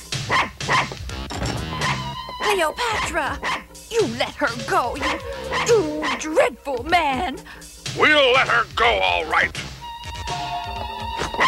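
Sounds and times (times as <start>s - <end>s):
dog barking and yelping: 0.2s - 1.0s, 1.8s - 2.2s, 2.9s - 3.7s, 5.0s - 6.4s
speech: 2.5s - 9.6s.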